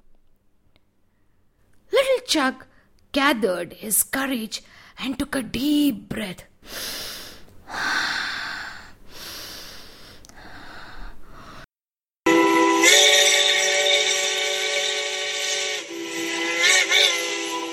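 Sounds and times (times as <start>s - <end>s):
speech: 2.3s - 7.0s
steam locomotive whistle blowing: 12.3s - 17.7s.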